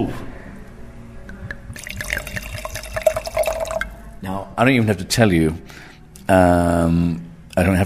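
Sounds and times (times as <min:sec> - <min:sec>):
speech: 0:00.0 - 0:00.3, 0:04.2 - 0:07.8
wine glugging from a bottle into a glass: 0:01.7 - 0:04.1.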